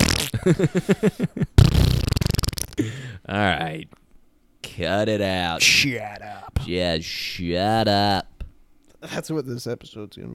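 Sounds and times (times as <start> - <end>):
fart: 0.0 - 0.4, 1.6 - 2.8
speech: 0.4 - 2.0, 2.8 - 4.0, 4.7 - 8.3, 9.0 - 10.3.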